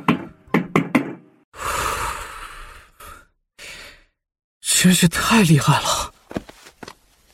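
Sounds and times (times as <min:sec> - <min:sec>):
urgent knocking on a door: 0:00.0 - 0:01.3
person exhaling: 0:01.6 - 0:04.2
speech: 0:04.8 - 0:06.0.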